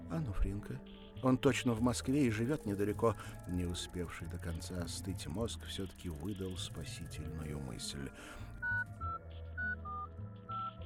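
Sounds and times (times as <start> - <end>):
speech: 0.1 - 8.9
mobile phone keypad tones as keys are pressed: 8.6 - 10.8.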